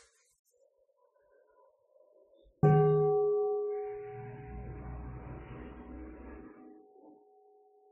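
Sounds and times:
Buddhist mindfulness bell struck by a nun, ringing: 2.7 - 6.9.

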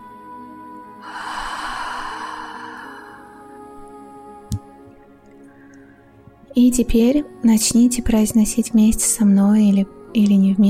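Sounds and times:
person taking a slow deep breath in through the nose: 1.0 - 3.7
speech: 6.6 - 10.6.

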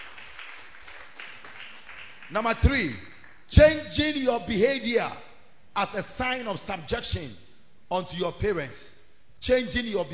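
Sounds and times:
crowd clapping during a sermon: 0.0 - 3.5
speech: 2.3 - 10.1.

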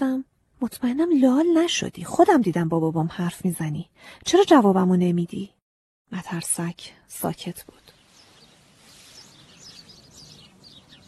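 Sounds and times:
speech: 0.6 - 7.9
small birds chirping and twittering in a chorus: 7.4 - 11.0.

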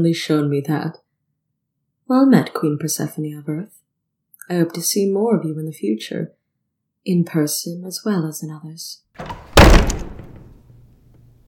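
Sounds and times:
speech: 0.0 - 1.0, 2.1 - 3.8, 4.5 - 6.4, 7.0 - 9.4
heavy doors shutting with a deep booming thud: 9.2 - 10.6.

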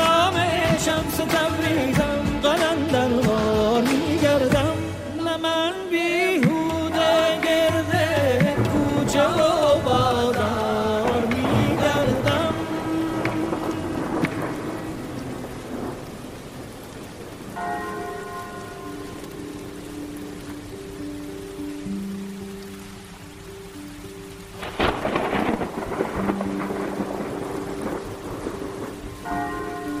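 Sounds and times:
heavy rain from a thunderstorm: 0.0 - 29.9
thunder crashing: 11.0 - 17.8, 24.6 - 29.4.

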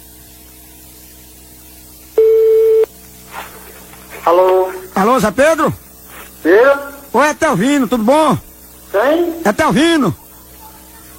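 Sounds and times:
telephone ringback tone on an outgoing call: 2.2 - 2.9
speech: 4.2 - 5.8, 6.4 - 10.2.

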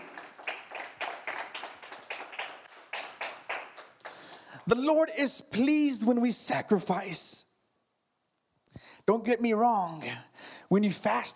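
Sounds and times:
group clapping in rhythm: 0.0 - 4.6
speech: 4.7 - 7.5, 9.1 - 11.3.

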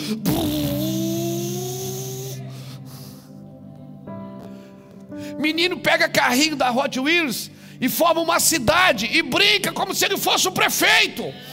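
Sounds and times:
voice imitating a paper airplane engine: 0.0 - 2.5
speech: 0.1 - 0.6, 5.4 - 11.5.

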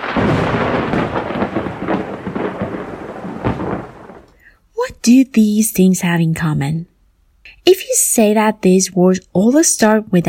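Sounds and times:
deep rolling thunder: 0.0 - 4.4
steady heavy rain in a thunderstorm: 0.0 - 4.4
speech: 5.1 - 6.9, 7.6 - 10.2.

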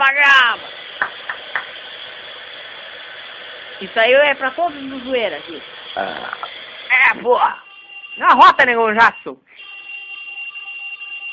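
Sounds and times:
speech: 3.8 - 7.6, 8.2 - 9.6
mobile phone ringing with a shrill electronic tone: 7.6 - 11.3.

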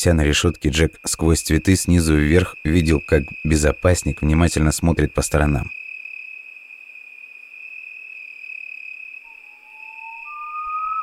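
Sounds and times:
speech: 0.0 - 5.8
chorus of crickets at night: 0.0 - 11.0
night bird giving drawn-out whistling hoots: 9.0 - 11.0.

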